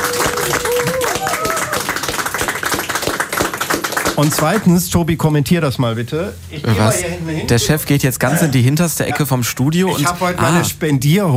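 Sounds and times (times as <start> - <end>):
small group applauding in a radio studio: 0.0 - 4.8
speech: 4.2 - 11.3.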